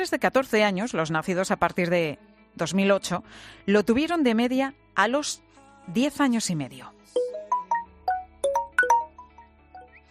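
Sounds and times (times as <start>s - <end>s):
speech: 0.0s - 7.4s
phone message notification chimes: 7.2s - 9.4s.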